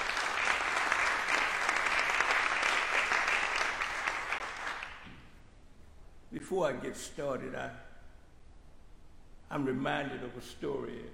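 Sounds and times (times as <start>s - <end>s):
audience clapping in praise to the Lord: 0.0s - 5.3s
speech: 6.5s - 7.9s, 9.5s - 11.1s.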